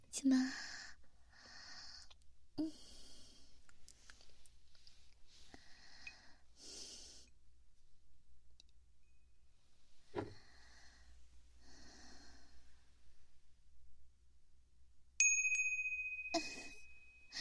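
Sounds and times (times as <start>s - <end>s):
speech: 0.2s - 0.7s
bright bell-like chime ringtone: 15.2s - 17.4s.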